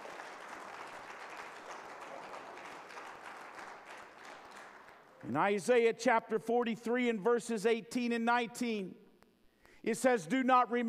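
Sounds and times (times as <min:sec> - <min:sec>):
audience applauding: 0:00.0 - 0:05.3
speech: 0:05.2 - 0:09.0, 0:09.8 - 0:10.8.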